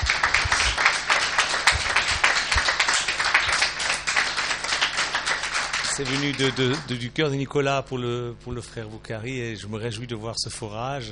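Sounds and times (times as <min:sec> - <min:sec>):
crowd applauding for the gift of a well: 0:00.0 - 0:07.0
speech: 0:06.0 - 0:11.0.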